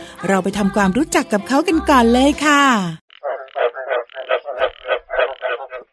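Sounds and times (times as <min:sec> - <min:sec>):
speech: 0:00.2 - 0:03.0
frog croaking: 0:03.0 - 0:05.9.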